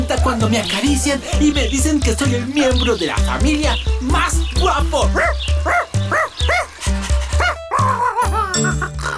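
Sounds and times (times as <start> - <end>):
speech: 0.2 - 5.7
dog barking in short yaps: 5.2 - 6.8, 7.4 - 8.2
dog giving high drawn-out whining yelps: 5.2 - 8.5.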